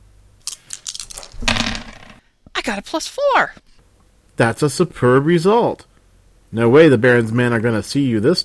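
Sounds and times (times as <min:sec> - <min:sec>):
Fudge dice clattering on a hard surface: 0:00.8 - 0:02.2
speech: 0:02.6 - 0:03.7, 0:04.4 - 0:05.9, 0:06.5 - 0:08.4.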